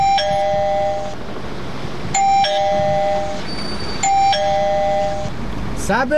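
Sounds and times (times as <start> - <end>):
electric battery-powered doorbell at a house door chiming: 0.0 - 1.2, 2.2 - 5.3.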